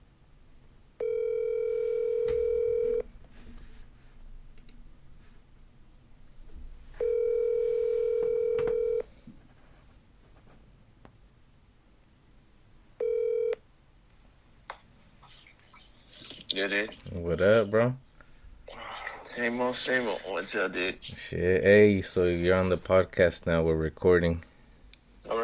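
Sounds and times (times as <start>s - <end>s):
faint noise: 0.0s - 25.4s
telephone ringback tone: 1.0s - 3.0s, 7.0s - 9.1s, 13.0s - 13.6s
speech: 16.6s - 18.0s, 19.4s - 24.5s.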